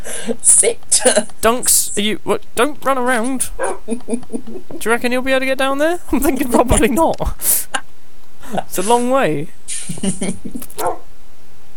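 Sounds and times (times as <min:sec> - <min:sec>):
brief voice sounds: 0:00.0 - 0:07.8, 0:08.4 - 0:09.8
speech: 0:00.2 - 0:07.8, 0:08.5 - 0:11.0
laughter: 0:03.2 - 0:11.0
dog giving short sharp bark: 0:03.6 - 0:03.9, 0:10.7 - 0:11.2.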